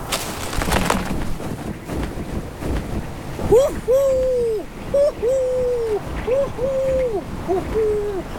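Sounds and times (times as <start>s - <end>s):
wind-like noise: 0.0s - 8.3s
male snowy owl calling while hunting near its nest: 3.4s - 8.3s.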